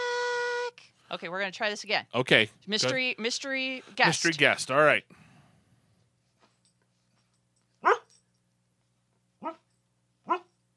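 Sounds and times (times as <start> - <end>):
faint steady hum: 0.0 - 10.7
speech: 1.1 - 5.2
female dog barking in a studio: 7.8 - 8.1, 9.4 - 10.5.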